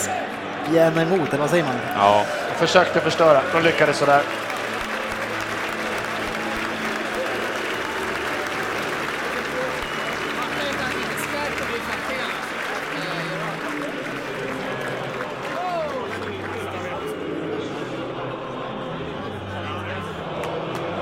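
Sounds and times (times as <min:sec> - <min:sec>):
speech: 0:00.7 - 0:04.5
huge football stadium crowd singing a club anthem in unison: 0:02.0 - 0:21.0.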